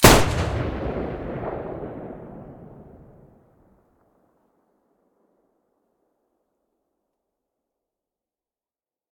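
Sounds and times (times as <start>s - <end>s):
Taurus weapon muzzle blasts: 0.0s - 3.3s.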